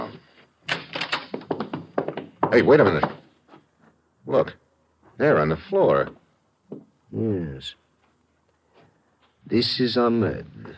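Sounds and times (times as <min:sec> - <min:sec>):
door to a room in a rooming house opening: 0:00.0 - 0:03.2
speech: 0:02.5 - 0:03.2, 0:04.3 - 0:04.6, 0:05.2 - 0:07.8, 0:09.5 - 0:10.7.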